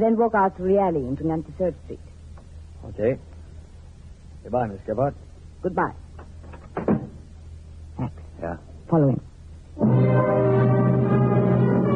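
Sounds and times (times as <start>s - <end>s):
speech: 0.0s - 2.1s, 2.8s - 3.3s, 4.4s - 6.0s, 8.0s - 10.5s
low steady hum: 0.0s - 11.9s
back door opening and closing with wooden clunks: 6.2s - 7.2s.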